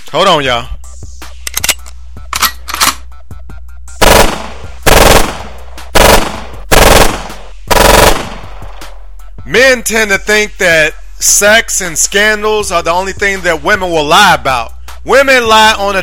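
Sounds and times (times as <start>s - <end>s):
speech: 0.1s - 0.8s, 9.5s - 16.0s
gunshots fired as warning shots: 4.0s - 8.9s.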